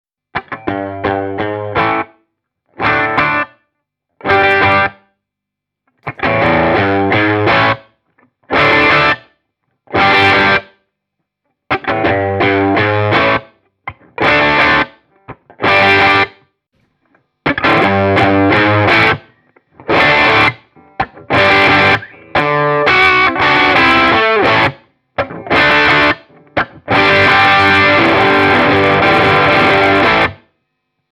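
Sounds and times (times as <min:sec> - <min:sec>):
electric guitar with humbucker pickup through Marshall amplifier: 0:00.4 - 0:02.1, 0:04.2 - 0:05.0, 0:06.0 - 0:07.9, 0:08.5 - 0:09.3, 0:09.9 - 0:10.7, 0:11.7 - 0:16.4, 0:17.0 - 0:31.0.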